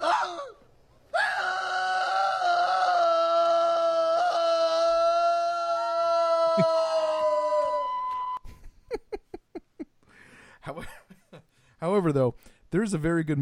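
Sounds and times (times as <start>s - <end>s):
loud drawn-out howl: 0.0s - 8.3s
speech: 11.8s - 13.3s.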